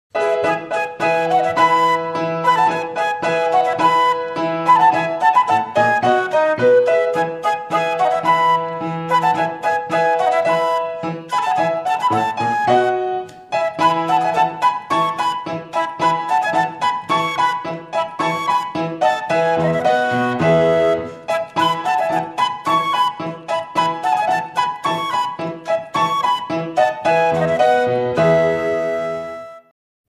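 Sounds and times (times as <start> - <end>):
flute: 0.1 - 29.7
piano: 0.1 - 29.7.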